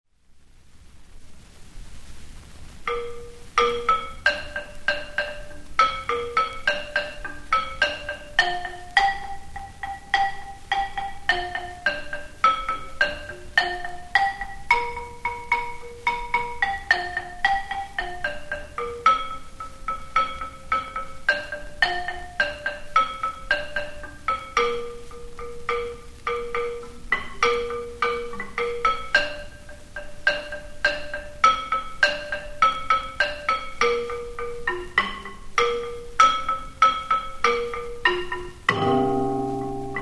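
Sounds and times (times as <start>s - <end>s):
gambang playing in gamelan: 2.9s - 40.0s.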